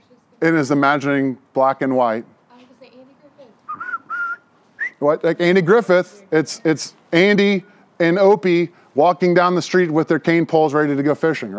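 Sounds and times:
speech: 0:00.4 - 0:02.3, 0:05.0 - 0:11.5
person whistling a short melody: 0:03.7 - 0:05.0.

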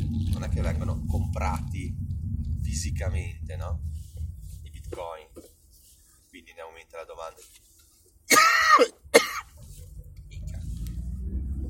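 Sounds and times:
low rumbling noise: 0:00.0 - 0:11.6
speech: 0:00.4 - 0:02.1, 0:02.7 - 0:04.0, 0:04.9 - 0:05.5
harsh rasping coughs: 0:08.3 - 0:09.6.

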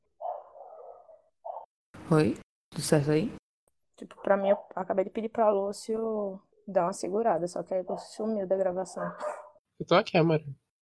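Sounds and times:
dog barking: 0:00.2 - 0:01.7, 0:07.8 - 0:09.6
speech: 0:02.1 - 0:03.4, 0:04.0 - 0:10.6.

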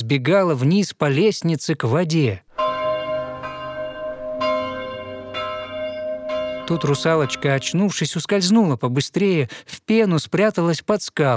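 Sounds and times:
speech: 0:00.1 - 0:02.4, 0:06.7 - 0:11.3
church bells ringing from a building near a seashore: 0:02.5 - 0:08.1.

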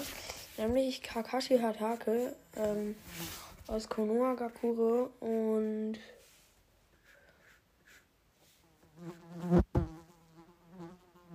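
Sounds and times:
speech: 0:00.6 - 0:06.2
housefly buzzing: 0:08.6 - 0:11.3.

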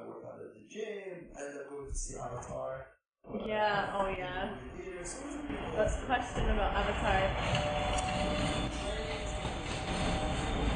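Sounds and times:
speech: 0:00.6 - 0:08.8
train rumbling and rattling: 0:05.6 - 0:10.7.

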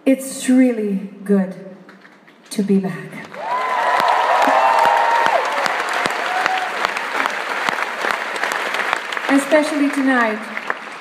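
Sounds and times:
speech: 0:00.1 - 0:01.7, 0:02.6 - 0:03.3, 0:09.3 - 0:10.6
large audience applauding: 0:03.3 - 0:10.9
crowd cheering: 0:03.4 - 0:10.9.

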